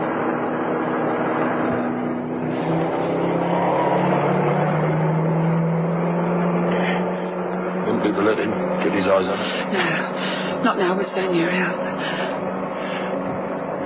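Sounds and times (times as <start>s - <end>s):
car engine drone driving into town outskirts: 0.0s - 13.8s
road rumble: 0.0s - 13.8s
speech: 8.4s - 12.3s.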